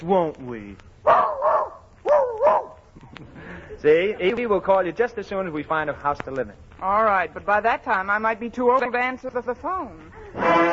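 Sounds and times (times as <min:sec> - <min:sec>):
speech: 0:00.0 - 0:01.3, 0:03.2 - 0:10.7
small dog barking: 0:01.0 - 0:02.8.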